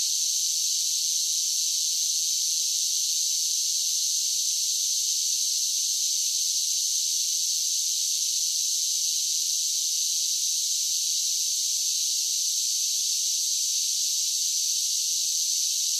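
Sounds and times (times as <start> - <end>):
cicadas buzzing: 0.0 - 15.9.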